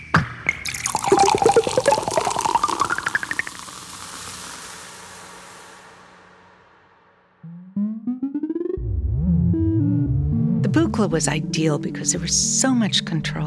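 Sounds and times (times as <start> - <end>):
synthesized soda bottle popping open: 0.2 - 3.7
synthesized soda bubbly pour rising in pitch: 0.5 - 5.8
synthesized white-noise soda fizz hissing: 0.7 - 6.2
electronic synth tones: 7.4 - 10.7
speech: 11.0 - 13.4.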